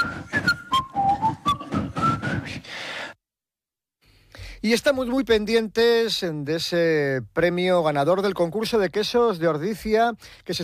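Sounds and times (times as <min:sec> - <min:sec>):
crowd whistling a soundtrack melody: 0:00.0 - 0:02.7
speech: 0:04.6 - 0:10.6.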